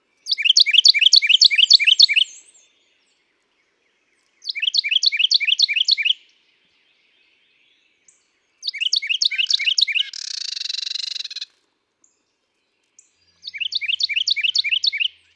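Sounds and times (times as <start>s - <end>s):
Carolina Wren song: 0.0s - 15.3s
female Carolina Wren calls: 0.2s - 15.3s.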